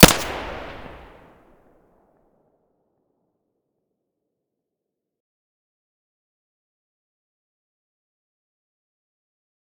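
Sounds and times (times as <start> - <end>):
gunshots: 0.0 - 1.1.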